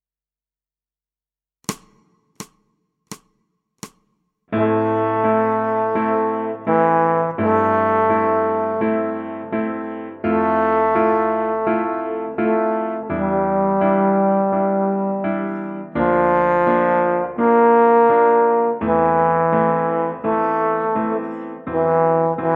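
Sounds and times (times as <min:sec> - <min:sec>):
grand piano: 0:04.5 - 0:22.5
small trombone: 0:04.6 - 0:09.5, 0:10.2 - 0:22.5.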